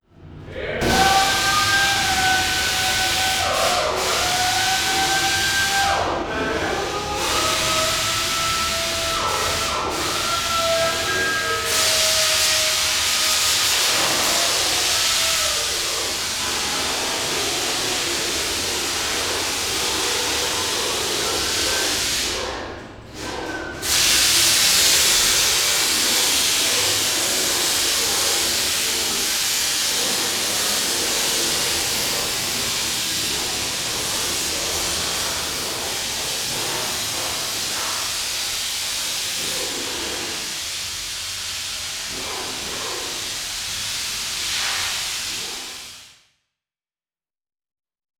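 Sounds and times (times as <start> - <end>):
industrial noise pollution: 0.1 - 45.8.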